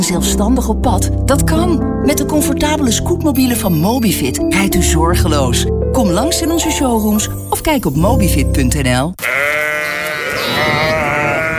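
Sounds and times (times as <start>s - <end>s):
speech: 0.0s - 9.3s
sheep bleating: 9.2s - 11.5s.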